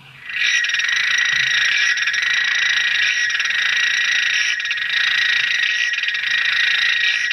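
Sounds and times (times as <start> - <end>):
African clawed frog clicking call made underwater: 0.2 - 7.3.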